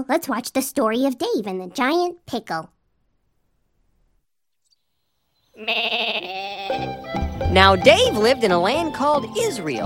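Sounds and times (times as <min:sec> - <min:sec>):
speech: 0:00.0 - 0:02.8, 0:05.6 - 0:09.8
sheep bleating: 0:05.5 - 0:06.9.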